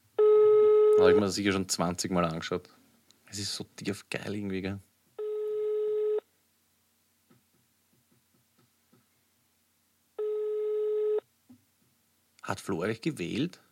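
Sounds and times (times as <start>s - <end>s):
ringback tone of an unanswered telephone call: 0.2s - 1.2s, 5.2s - 6.2s, 10.2s - 11.2s
speech: 1.0s - 4.9s, 12.5s - 13.7s.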